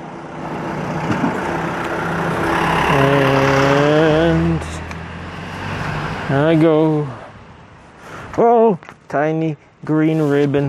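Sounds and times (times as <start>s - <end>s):
large vehicle engine passing on a street: 0.0s - 7.6s
speech: 6.4s - 7.1s, 9.1s - 10.6s.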